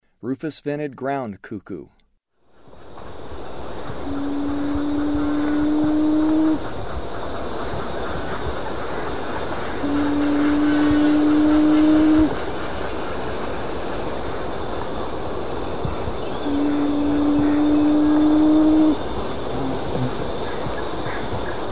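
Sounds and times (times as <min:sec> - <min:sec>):
Rufous-vented Ground-Cuckoo calling: 0:02.8 - 0:21.7.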